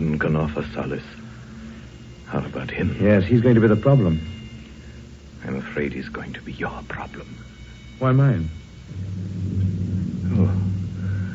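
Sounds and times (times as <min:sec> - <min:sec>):
speech: 0:00.2 - 0:01.3, 0:02.3 - 0:04.4, 0:05.4 - 0:09.2
rumbling thunder of a mountain storm: 0:08.9 - 0:11.3.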